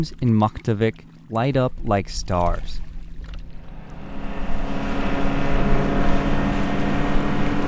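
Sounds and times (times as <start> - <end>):
speech: 0.0 - 2.9
motorboat engine droning on a river: 2.8 - 7.6.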